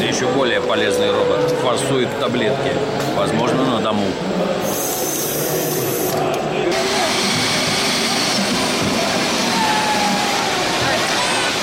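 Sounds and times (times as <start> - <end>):
speech: 0.2 - 4.8
power drill with a spade bit boring: 4.7 - 11.6.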